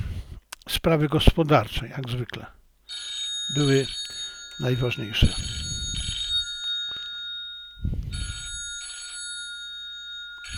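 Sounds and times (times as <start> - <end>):
speech: 0.8 - 2.6, 3.5 - 5.7
old-style telephone bell ringing: 2.9 - 10.5.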